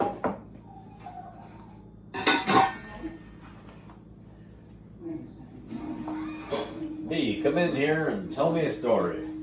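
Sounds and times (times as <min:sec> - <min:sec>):
metal pots and pans clanging in a kitchen: 0:00.0 - 0:00.4, 0:02.1 - 0:03.3
speech: 0:07.4 - 0:09.3.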